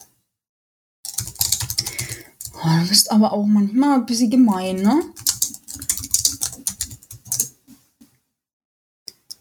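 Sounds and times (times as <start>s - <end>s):
rapid typing on a computer keyboard: 1.1s - 2.6s, 4.5s - 7.6s
speech: 2.6s - 5.3s.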